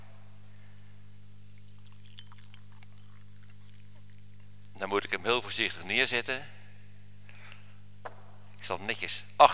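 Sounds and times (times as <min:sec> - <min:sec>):
steady low electrical hum: 0:00.0 - 0:09.5
warm water poured into a thermos flask: 0:01.5 - 0:04.3
speech: 0:04.8 - 0:06.6, 0:08.7 - 0:09.5.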